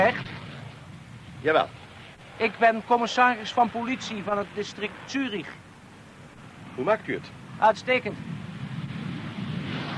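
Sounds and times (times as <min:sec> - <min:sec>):
speech: 0:00.0 - 0:00.3, 0:01.4 - 0:01.8, 0:02.4 - 0:05.6, 0:06.8 - 0:08.4
Mirage fighter jets flying overhead: 0:00.0 - 0:09.9.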